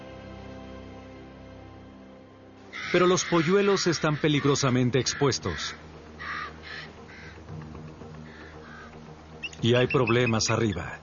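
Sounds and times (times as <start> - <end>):
common raven harsh croaking calls: 2.7 - 10.5
speech: 2.9 - 5.9, 9.6 - 11.0.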